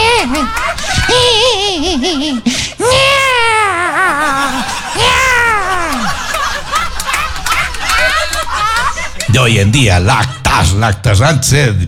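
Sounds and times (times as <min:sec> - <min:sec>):
baby crying in long wavering wails: 0:00.0 - 0:06.2
laughter: 0:00.0 - 0:11.0
speech: 0:09.4 - 0:11.8.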